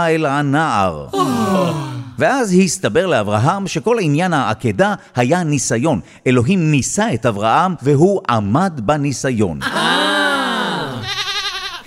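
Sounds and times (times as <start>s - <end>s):
speech: 0.0s - 10.1s
ram bleating: 11.0s - 11.8s.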